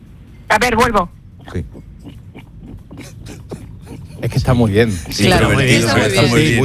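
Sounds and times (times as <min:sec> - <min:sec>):
speech: 0:00.5 - 0:02.2, 0:04.2 - 0:06.6
person imitating a pig oinking quietly and hoarsely: 0:01.4 - 0:04.3.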